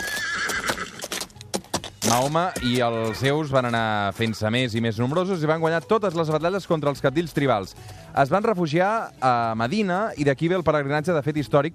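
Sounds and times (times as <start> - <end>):
horse neighing: 0.0 - 1.2
horse hooves clip-clopping: 0.0 - 6.3
speech: 2.0 - 11.7.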